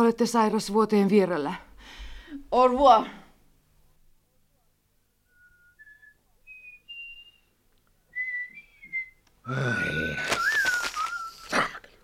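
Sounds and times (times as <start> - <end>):
speech: 0.0 - 3.2, 9.5 - 10.4
person whistling a tune: 5.3 - 7.5, 8.1 - 9.2, 10.4 - 11.5.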